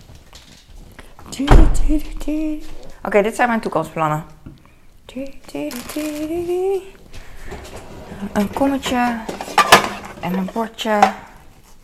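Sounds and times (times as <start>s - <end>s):
speech: 1.3s - 4.3s, 5.2s - 7.6s, 8.2s - 9.4s, 10.2s - 11.2s
rummaging in a fridge: 7.2s - 11.1s.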